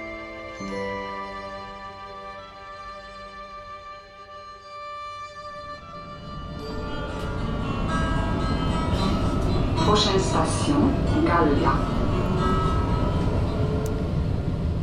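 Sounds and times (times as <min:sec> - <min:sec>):
low rumble inside a moving crowded tram in Strasbourg: 0:00.0 - 0:14.8
indistinct passenger voices murmuring: 0:08.7 - 0:13.8
speech: 0:10.0 - 0:12.0.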